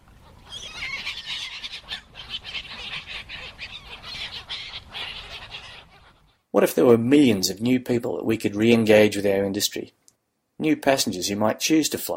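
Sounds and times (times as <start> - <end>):
crowd of seagulls squawking and squabbling: 0.0 - 6.4
speech: 6.6 - 10.0, 10.6 - 12.1.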